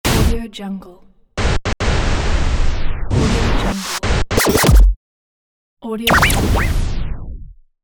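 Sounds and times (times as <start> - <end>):
vinyl record transition: 1.4 - 5.0, 6.1 - 7.4.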